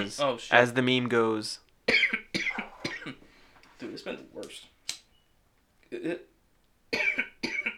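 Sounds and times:
speech: 0.0 - 1.6, 3.8 - 4.7, 5.9 - 6.3
people coughing from smoking cannabis: 1.9 - 3.2, 6.9 - 7.7.

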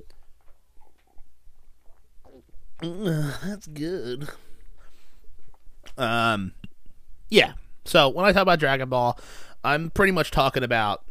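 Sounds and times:
sipping and swallowing water: 0.0 - 3.5
speech: 2.4 - 4.5, 6.0 - 6.7, 7.3 - 11.0.

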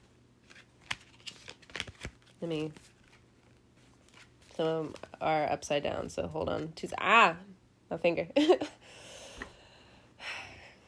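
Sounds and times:
tarot cards falling and being handled: 0.4 - 5.2
speech: 2.4 - 2.9, 4.6 - 8.8.

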